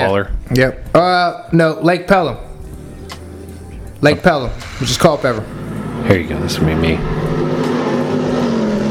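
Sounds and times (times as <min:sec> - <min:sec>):
speech: 0:00.1 - 0:02.5, 0:04.0 - 0:07.4
2,700-horsepower 40-foot speedboat engine roaring: 0:04.6 - 0:08.8.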